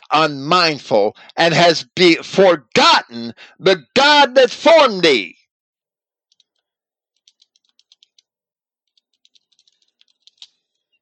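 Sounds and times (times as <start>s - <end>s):
speech: 0.1s - 5.4s
typing on a computer keyboard: 6.3s - 11.0s.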